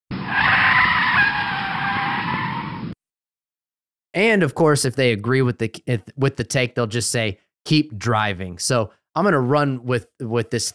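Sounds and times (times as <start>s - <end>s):
car tires skidding under hard braking: 0.1s - 3.0s
speech: 4.2s - 10.7s.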